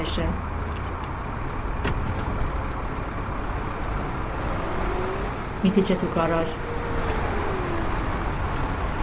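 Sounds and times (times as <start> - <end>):
speech: 0.0 - 0.6, 5.6 - 6.7
road noise: 0.0 - 9.0
truck driving with rumbling engine drone: 0.0 - 9.0.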